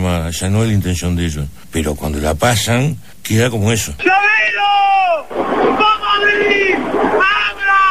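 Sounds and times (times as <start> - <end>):
speech: 0.2 - 7.9
prisoners yelling and shouting: 4.0 - 7.9
crowd noise: 5.2 - 7.9.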